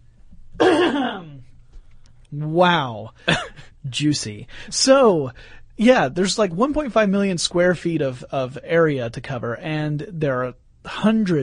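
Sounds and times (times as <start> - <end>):
loud raspy throat clearing: 0.6 - 1.4
speech: 2.3 - 11.4.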